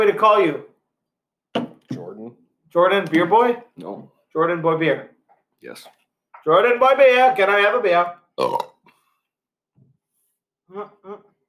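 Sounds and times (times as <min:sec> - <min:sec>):
speech: 0:00.0 - 0:00.7, 0:01.9 - 0:08.7, 0:10.7 - 0:11.3
loud belch in throaty voiced bursts: 0:08.4 - 0:08.8.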